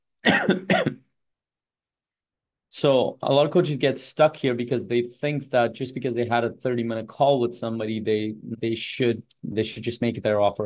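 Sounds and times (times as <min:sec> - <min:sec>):
person coughing harshly: 0:00.2 - 0:01.1
speech: 0:00.4 - 0:01.0, 0:02.8 - 0:10.6.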